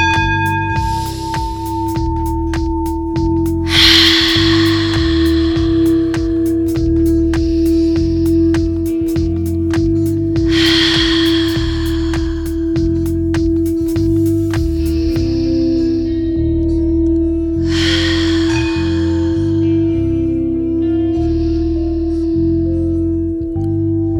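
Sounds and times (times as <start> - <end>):
music bed: 0.0 - 24.1
deep breath in through the nose during a breathing exercise: 3.5 - 9.0, 10.1 - 16.4, 17.6 - 20.3.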